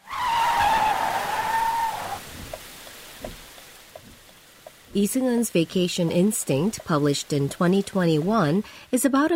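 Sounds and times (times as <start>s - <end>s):
car tire screech: 0.0s - 2.3s
rain hissing: 0.0s - 9.0s
faint patters and clicks: 2.3s - 9.0s
speech: 5.0s - 9.3s.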